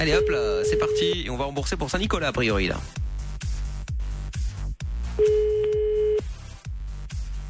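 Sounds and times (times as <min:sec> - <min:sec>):
telephone line ringing or dial tone: 0:00.0 - 0:01.2, 0:05.2 - 0:06.2
speech: 0:00.0 - 0:03.0
pounding rhythmic music bed: 0:00.0 - 0:07.4.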